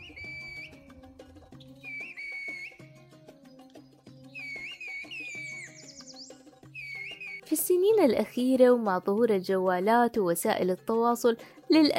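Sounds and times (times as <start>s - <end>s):
whistled language whistled with the tongue in Kuşköy: 0.0s - 0.9s, 1.6s - 2.9s, 4.3s - 7.5s
speech: 7.5s - 11.9s.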